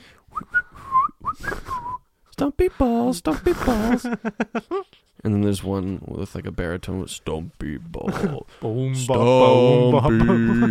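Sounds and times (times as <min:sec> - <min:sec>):
person whistling a short lilting tune: 0:00.3 - 0:02.0
speech: 0:02.4 - 0:10.6
laughter: 0:03.6 - 0:04.9, 0:08.0 - 0:08.5, 0:09.3 - 0:10.6.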